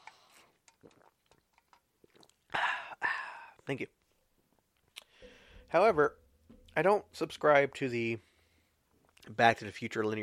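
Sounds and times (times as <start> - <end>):
person sipping a drink: 0.0 - 3.6
speech: 3.7 - 4.0, 5.7 - 6.2, 6.8 - 8.3, 9.3 - 10.2.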